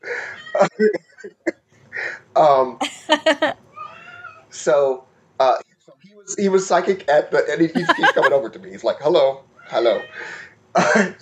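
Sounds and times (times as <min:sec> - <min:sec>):
speech: 0:00.6 - 0:01.1, 0:02.4 - 0:03.6, 0:04.6 - 0:05.6, 0:06.2 - 0:11.2
laughter: 0:02.8 - 0:03.6, 0:07.8 - 0:08.5
cat meowing: 0:03.7 - 0:04.5, 0:09.6 - 0:10.4.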